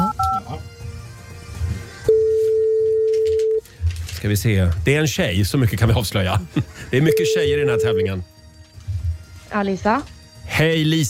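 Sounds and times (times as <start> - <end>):
telephone keypad dialing tones: 0.0 - 0.4, 2.1 - 3.6, 7.1 - 8.1
telephone line ringing tone: 2.1 - 3.6, 7.1 - 8.2
speech: 4.2 - 8.3, 9.5 - 11.0.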